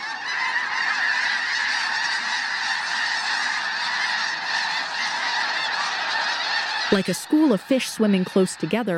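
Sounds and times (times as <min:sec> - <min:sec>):
huge whirling flock of snow geese calling in the air: 0:00.0 - 0:08.9
speech: 0:06.9 - 0:08.9.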